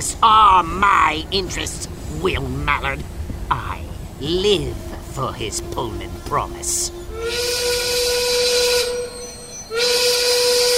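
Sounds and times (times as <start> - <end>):
speech: 0.0 - 7.8
steam train whistle as night train arrives in Elko Nevada: 6.9 - 10.7.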